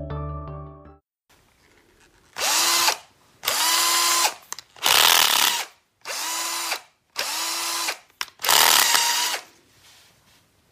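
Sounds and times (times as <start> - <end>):
cordless screwdriver whirring: 2.3 - 9.5.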